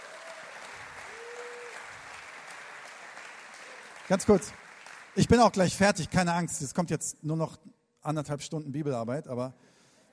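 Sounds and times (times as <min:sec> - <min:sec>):
audience applause: 0:00.0 - 0:06.2
speech: 0:04.1 - 0:04.6, 0:05.2 - 0:09.7.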